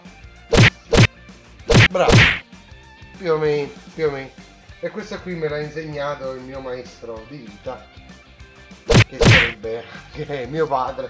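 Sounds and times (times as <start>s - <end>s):
hard fleshy slaps: 0.5s - 1.1s, 1.7s - 2.4s, 8.9s - 9.6s
speech: 1.9s - 2.4s, 3.2s - 8.0s, 9.1s - 11.0s.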